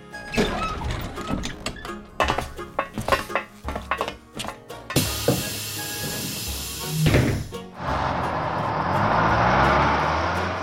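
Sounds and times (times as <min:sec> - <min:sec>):
metallic clanks and rattles: 0:00.2 - 0:05.0
bus air brakes hissing: 0:05.0 - 0:07.6
bus engine rumbling as it drives off: 0:05.0 - 0:10.6.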